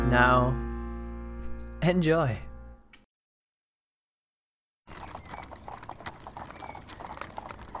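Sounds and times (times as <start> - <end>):
speech: 0.1 - 0.7, 1.8 - 2.5
horse hooves clip-clopping on a bumpy path: 4.9 - 7.7
horse-drawn cart's wooden frame rattling and rumbling on a bumpy path: 4.9 - 7.7.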